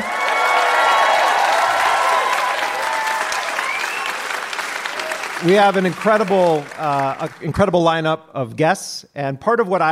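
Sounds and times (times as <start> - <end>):
scattered cheers and whoops from a large live audience: 0.0 - 5.5
large live audience clapping at the Hot Docs Theatre in Toronto Canada: 0.0 - 7.9
speech: 5.4 - 9.9.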